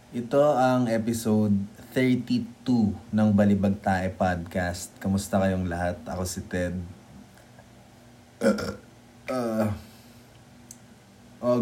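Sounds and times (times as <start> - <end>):
speech: 0.1 - 7.0, 8.4 - 9.9, 11.4 - 11.5
short throaty burps: 8.4 - 9.9.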